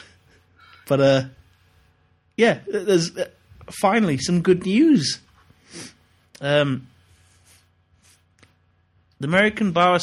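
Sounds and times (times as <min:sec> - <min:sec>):
speech: 0:00.9 - 0:01.4, 0:02.4 - 0:06.9, 0:09.2 - 0:10.0
nasal sniff from someone with a cold: 0:05.5 - 0:06.1.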